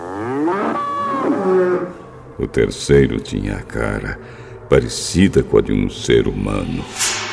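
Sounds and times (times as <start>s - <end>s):
bull mooing: 0.0s - 2.2s
speech: 2.4s - 7.2s.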